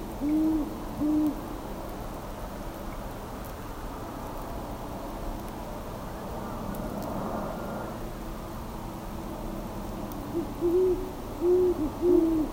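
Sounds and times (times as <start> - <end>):
background hiss: 0.0 - 12.5
great horned owl giving low hoots: 0.2 - 1.4, 10.3 - 12.5.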